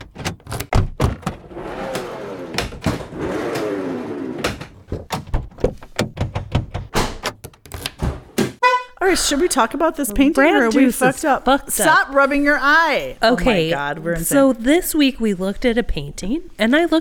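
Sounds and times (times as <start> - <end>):
car door creaking squeal: 0.0 - 8.8
car door handle clacking: 4.4 - 8.0
speech: 9.1 - 16.9.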